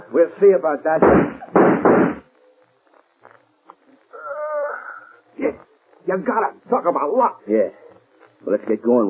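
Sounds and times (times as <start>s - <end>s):
speech: 0.1s - 2.1s, 6.1s - 7.8s, 8.4s - 9.0s
gunshots fired in a radio drama: 1.0s - 2.3s.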